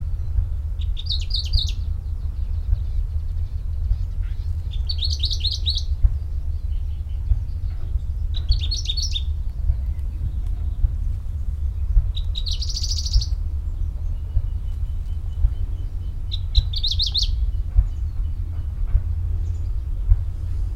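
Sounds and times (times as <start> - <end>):
grey-crowned warbler Seicercus tephrocephalus singing: 0.0 - 20.7.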